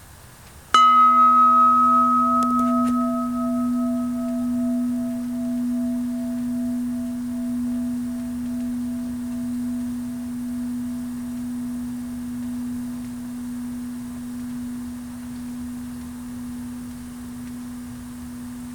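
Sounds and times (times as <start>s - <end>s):
chime: 0.8s - 18.7s.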